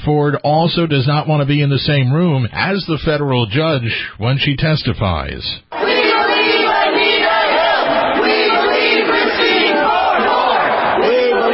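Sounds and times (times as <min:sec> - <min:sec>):
speech: 0:00.0 - 0:06.0
demonstrators protesting a Supreme Court nomination shouting and chanting: 0:05.7 - 0:11.5.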